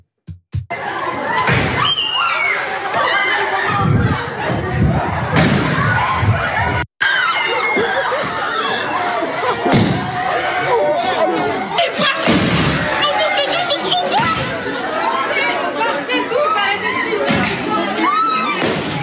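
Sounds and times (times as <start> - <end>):
students shouting and chattering in a high school: 0.7 - 19.0
laughter: 6.4 - 12.2
firework mortar shots going off inside a high school: 12.2 - 12.9, 18.6 - 19.0.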